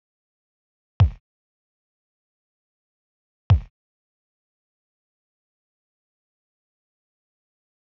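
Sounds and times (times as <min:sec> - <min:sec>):
old kick drum: 0:01.0 - 0:01.2, 0:03.5 - 0:03.7.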